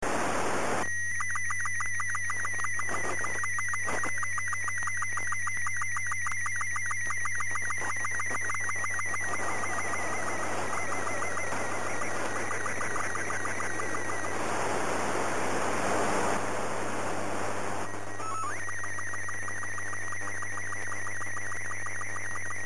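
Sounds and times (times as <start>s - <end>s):
SSTV signal tones: 0.3s - 22.6s.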